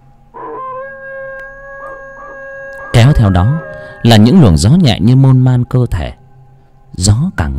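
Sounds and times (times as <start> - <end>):
stray dogs howling on a distant mountainside: 0.3 - 4.7
speech: 3.0 - 6.2, 7.0 - 7.5.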